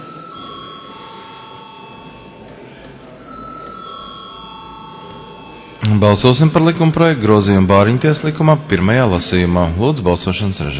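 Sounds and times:
parliamentary electric bell ringing to call members to a vote: 0.0s - 6.8s
speech: 5.9s - 10.7s.

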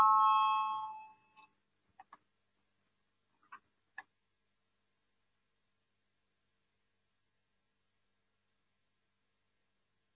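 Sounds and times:
electric parliamentary bell ringing to call a vote: 0.0s - 1.4s.

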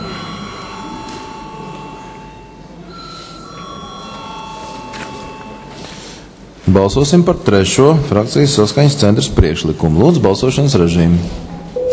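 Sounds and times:
electric parliament voting bell ringing in a parliament chamber: 0.0s - 5.7s
faint murmur: 0.0s - 11.9s
speech: 6.7s - 11.5s.

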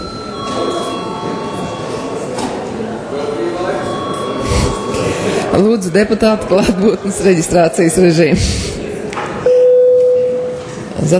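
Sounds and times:
parliament session bell ringing: 0.0s - 7.8s
murmur of voices in a large room: 0.0s - 11.1s
speech: 5.6s - 8.8s, 11.0s - 11.1s.

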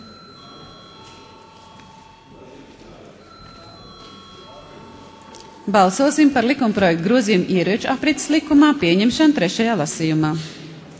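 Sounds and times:
sustained electric bell ringing in a parliament chamber before a vote: 0.0s - 8.7s
low murmur: 0.0s - 10.9s
speech: 5.7s - 10.6s.

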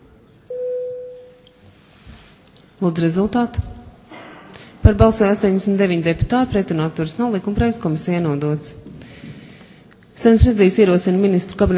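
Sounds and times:
parliament voting bell signal: 0.5s - 1.4s
speech: 2.8s - 3.7s, 4.9s - 8.8s, 10.2s - 11.7s.

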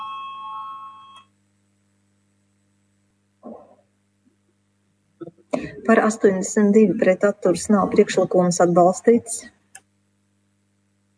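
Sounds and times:
electronic bell ringing before a vote in the Latvian parliament: 0.0s - 1.2s
speech: 5.6s - 9.6s.

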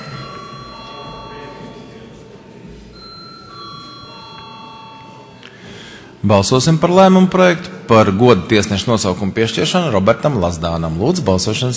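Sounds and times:
electric voting bell ringing in the Latvian parliament before a vote: 0.0s - 2.0s, 3.0s - 6.0s
low murmur of people in the room: 0.0s - 11.7s
speech: 6.2s - 11.7s.

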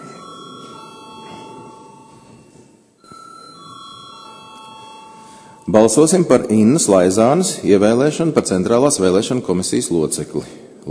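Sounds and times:
electric bell ringing in a parliament chamber: 0.0s - 6.3s
speech: 5.7s - 10.6s.

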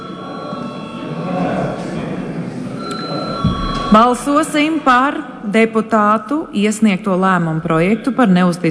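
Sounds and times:
low murmur of parliament chamber room noise: 0.0s - 8.6s
parliament chamber electric bell calling members to vote: 2.8s - 4.4s
speech: 3.9s - 8.6s.

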